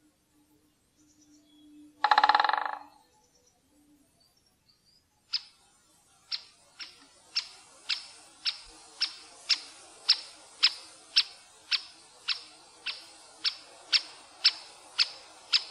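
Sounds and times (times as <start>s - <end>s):
quiet background noise: 0.0s - 15.6s
great spotted woodpecker calling with short sharp kik notes: 2.0s - 2.9s, 6.3s - 15.6s.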